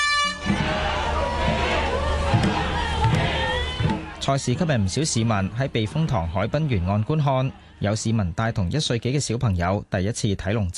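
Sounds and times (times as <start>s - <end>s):
sustained dragon boat race start horn: 0.0s - 4.2s
crowd cheering along the waterfront at a dragon boat race in Hong Kong: 0.0s - 9.2s
dragon boat race drum beats: 0.3s - 4.3s
speech: 4.2s - 10.7s.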